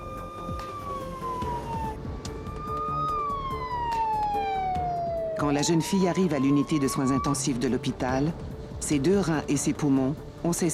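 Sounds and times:
ambulance siren wailing: 0.0 - 7.8
steady traffic rumble: 0.0 - 10.7
speech: 5.4 - 10.7.

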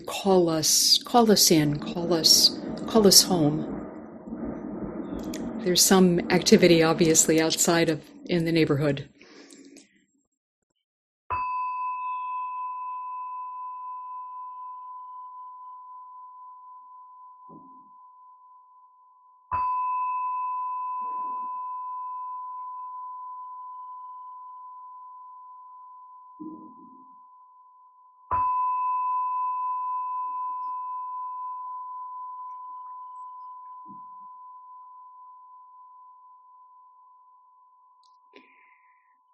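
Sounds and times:
speech: 0.1 - 3.7, 5.6 - 9.2
meditation bell ringing: 11.3 - 17.4, 19.5 - 26.3, 27.1 - 37.9.

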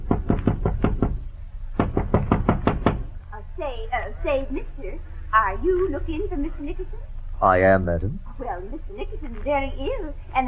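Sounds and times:
sharp knocking on a door: 0.0 - 1.2, 1.8 - 3.1
speech: 3.8 - 10.4.

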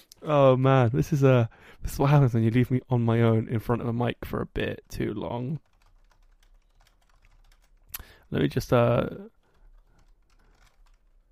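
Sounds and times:
speech: 0.0 - 5.7, 8.3 - 9.3
typing on a computer keyboard: 4.9 - 8.7, 9.4 - 11.3.

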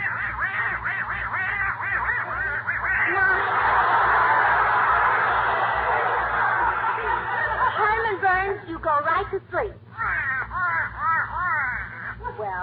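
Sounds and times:
duck quacking: 0.0 - 3.4, 10.0 - 12.4
low pulsing hum: 0.0 - 12.6
laughter: 2.0 - 8.8.

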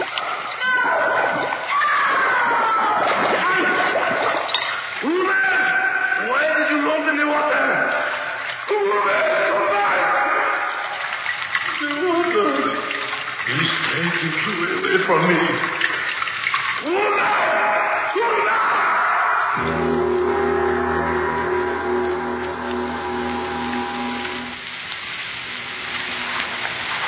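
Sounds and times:
frantic thrashing in water: 0.0 - 6.3, 7.7 - 19.5, 25.0 - 27.0
heavy water splashing and churning as a man is held under: 0.0 - 27.0.

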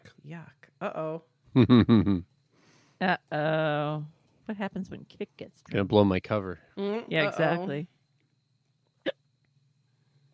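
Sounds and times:
speech: 0.3 - 2.3, 3.0 - 8.0
person hiccuping: 1.6 - 2.2.

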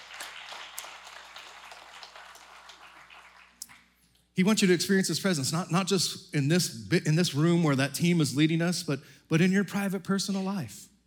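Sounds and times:
audience applauding: 0.0 - 3.8
speech: 4.4 - 10.9.

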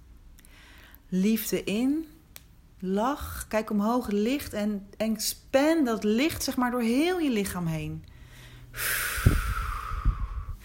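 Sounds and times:
speech: 1.1 - 2.1, 2.8 - 8.1, 8.7 - 9.4
deep exhale during a guided breathing exercise: 8.2 - 10.6.

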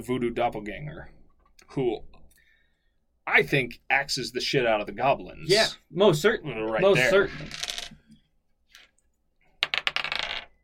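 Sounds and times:
speech: 0.0 - 2.2, 3.2 - 7.7
dice tumbling and rattling across a hard tabletop during a role-playing game: 7.3 - 8.0, 9.6 - 10.6.

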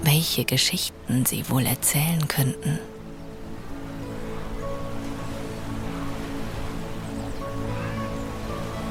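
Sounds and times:
gentle steady lapping of water: 0.0 - 8.8
speech: 0.2 - 2.9.

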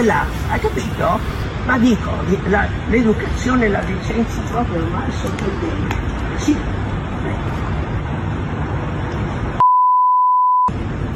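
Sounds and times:
speech: 0.0 - 7.5
noisy broadband like traffic: 0.0 - 9.9
censor beep pure tone: 9.6 - 10.7.

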